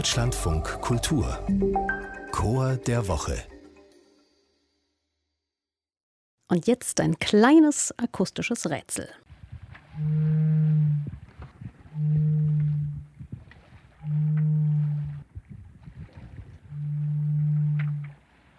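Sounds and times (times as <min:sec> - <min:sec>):
speech: 0:00.0 - 0:03.5, 0:06.5 - 0:09.3, 0:10.0 - 0:11.2
whistling buoy moaning: 0:09.9 - 0:11.2, 0:11.8 - 0:13.2, 0:13.9 - 0:15.4, 0:16.2 - 0:18.3.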